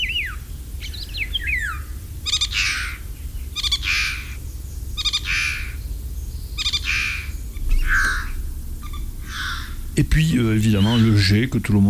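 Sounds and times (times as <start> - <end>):
Eurasian golden oriole singing outdoors: 0.0 - 11.8
low constant rumble: 0.0 - 11.8
speech: 10.0 - 11.8.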